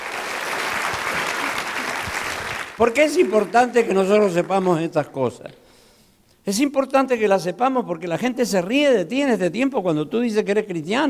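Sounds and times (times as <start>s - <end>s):
church congregation applauding during a sermon: 0.0s - 4.9s
speech: 2.8s - 5.6s, 6.4s - 11.0s.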